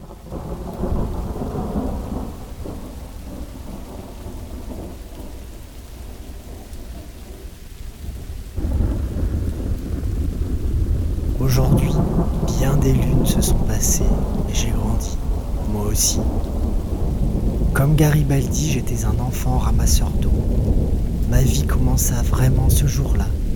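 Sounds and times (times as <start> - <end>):
low rolling thunder: 0.0 - 23.5
steady rain pouring: 0.0 - 23.5
speech: 12.9 - 15.2, 15.9 - 16.8, 17.8 - 23.4.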